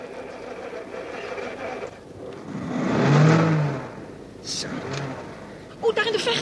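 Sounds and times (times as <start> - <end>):
heavy truck engine started without a key, turning over and revving: 0.0 - 6.4.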